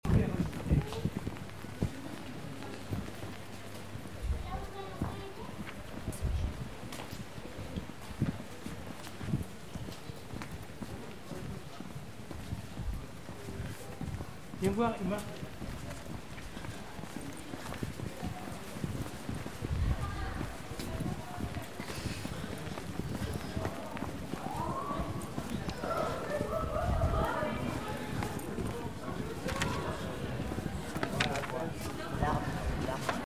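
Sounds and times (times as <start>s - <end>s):
schoolchildren walking: 0.0s - 33.2s
schoolchildren's voices: 4.2s - 6.8s, 19.6s - 33.2s.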